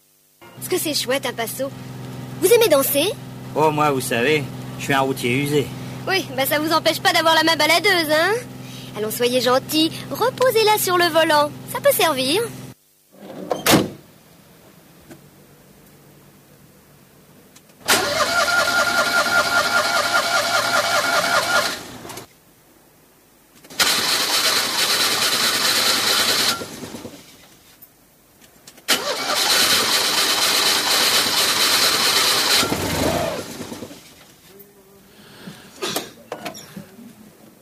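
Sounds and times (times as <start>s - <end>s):
speech: 0.4s - 12.6s
large podium bus engine starter cranking without starting: 17.8s - 22.3s, 23.6s - 27.5s, 28.9s - 34.5s.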